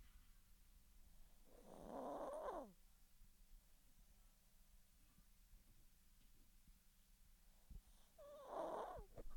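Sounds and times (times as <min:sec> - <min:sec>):
dog snoring softly with rasping breaths: 0:01.5 - 0:02.8, 0:08.1 - 0:09.2.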